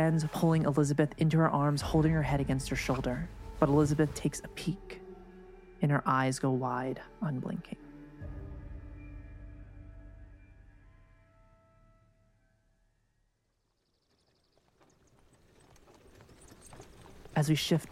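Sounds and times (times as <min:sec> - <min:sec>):
speech: 0:00.0 - 0:05.0, 0:05.8 - 0:07.8, 0:17.4 - 0:17.9
hooves of two hackney horses clip-clopping pulling a carriage: 0:14.0 - 0:17.9.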